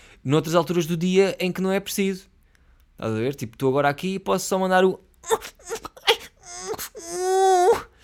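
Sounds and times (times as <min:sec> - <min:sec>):
speech: 0:00.2 - 0:02.3, 0:03.0 - 0:05.8
single voice mimicking sexual moaning: 0:05.2 - 0:07.9.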